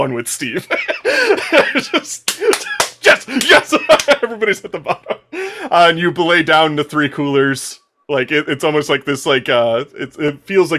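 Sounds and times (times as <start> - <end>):
speech: 0.0 - 10.7
laughter: 0.5 - 5.9
group of men slapping hands in high fives: 2.2 - 4.2.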